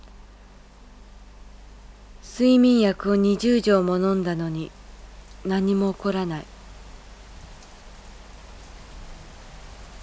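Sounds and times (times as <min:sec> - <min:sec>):
speech: 0:02.4 - 0:04.8, 0:05.4 - 0:06.5
heavy rain pouring: 0:04.3 - 0:10.0.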